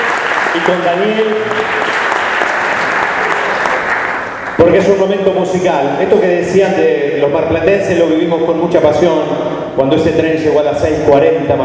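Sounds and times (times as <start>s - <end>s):
audience applauding at an opening ceremony: 0.0s - 4.6s
speech: 0.5s - 2.1s, 4.6s - 11.6s.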